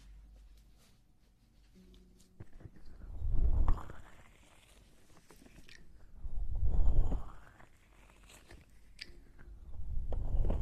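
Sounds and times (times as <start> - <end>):
low hum: 0.0 - 4.7, 5.9 - 7.6, 9.1 - 10.6
mouth and rubbing sounds against the microphone: 0.6 - 9.4.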